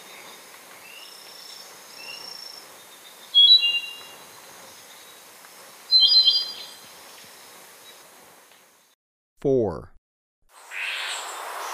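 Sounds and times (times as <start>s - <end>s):
Andean solitaire singing in Ecuador: 3.3s - 4.1s, 5.9s - 6.8s
speech: 9.4s - 9.9s.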